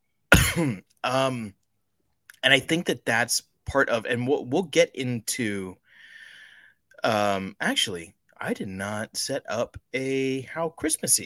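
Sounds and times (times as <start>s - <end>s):
man coughing harshly: 0.3s - 0.9s
speech: 0.6s - 1.6s, 2.4s - 5.8s, 7.0s - 11.2s.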